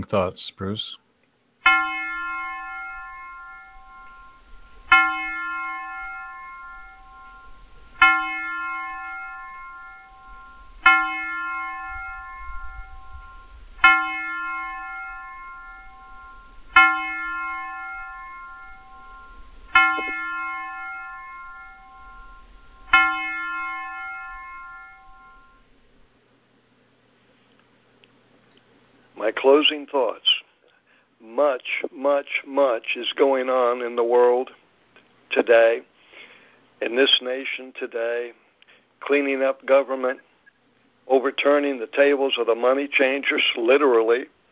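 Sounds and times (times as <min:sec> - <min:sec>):
speech: 0:00.0 - 0:01.0, 0:29.5 - 0:30.3, 0:31.4 - 0:34.6, 0:35.4 - 0:35.9, 0:36.8 - 0:38.4, 0:39.0 - 0:40.3, 0:41.1 - 0:44.4
bell tolling: 0:01.7 - 0:25.7.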